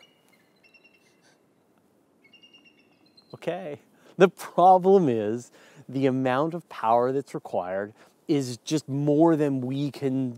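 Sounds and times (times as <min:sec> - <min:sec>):
eagle calling with thin high whistling cries: 0:00.0 - 0:03.9
steady outdoor hiss: 0:00.0 - 0:10.3
speech: 0:03.3 - 0:10.3.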